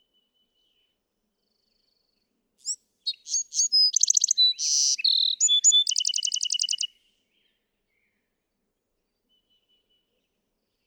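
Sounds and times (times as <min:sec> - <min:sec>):
Bewick's wren song with whistles, buzz and rattling trill: 0:02.6 - 0:06.9.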